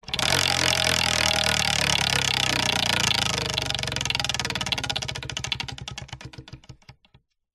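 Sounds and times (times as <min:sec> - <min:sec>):
wooden wheel of fortune spinning at medium speed: 0:00.0 - 0:07.2.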